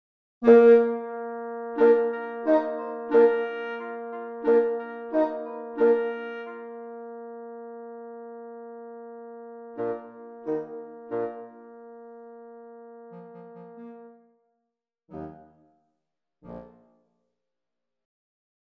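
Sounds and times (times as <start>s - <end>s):
bassoon: 0.4s - 14.4s, 15.1s - 15.6s.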